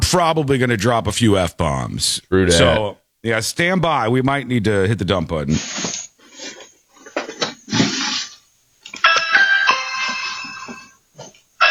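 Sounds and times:
speech: 0.1 - 5.8
clattering and rustling handling noises: 5.9 - 9.3, 10.0 - 11.5
doorbell chiming: 9.0 - 11.0.

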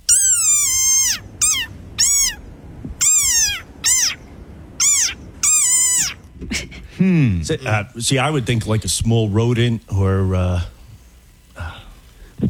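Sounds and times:
desert rain frog shrill squeaky calls: 0.0 - 6.4
speech: 7.0 - 10.8.

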